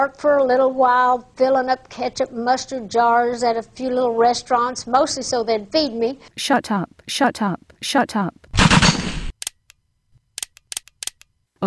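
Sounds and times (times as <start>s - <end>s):
speech: 0.0s - 8.6s
gunshots: 8.6s - 9.4s.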